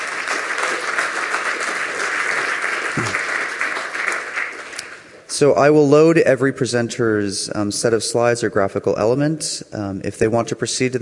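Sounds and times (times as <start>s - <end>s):
audience applauding a presenter at a lightning-talk session: 0.0s - 5.2s
speech: 5.4s - 11.0s.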